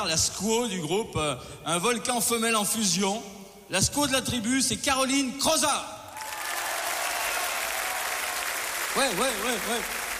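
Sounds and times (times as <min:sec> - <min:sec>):
speech: 0:00.0 - 0:06.0, 0:09.0 - 0:10.0
large audience applauding: 0:06.2 - 0:10.1.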